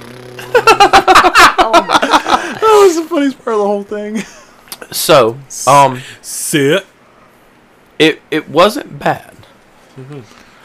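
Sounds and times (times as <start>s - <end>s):
voice imitating a Peterbilt truck Jake engine brake: 0.0s - 0.7s
low steady hum: 0.0s - 10.6s
speech: 0.4s - 1.2s, 2.9s - 6.9s, 8.0s - 9.3s, 10.0s - 10.4s
laughter: 0.4s - 2.9s.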